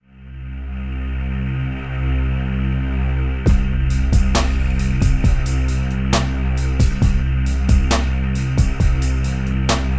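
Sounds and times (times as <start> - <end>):
ambient music: 0.0 - 9.9
low percussion: 3.5 - 9.9.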